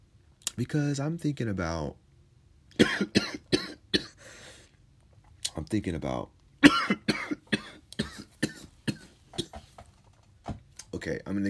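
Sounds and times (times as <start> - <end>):
speech: 0.6 - 2.0, 2.8 - 3.4, 5.6 - 7.0, 11.0 - 11.4
person coughing harshly after inhaling too much smoke: 2.8 - 4.2, 6.6 - 9.7.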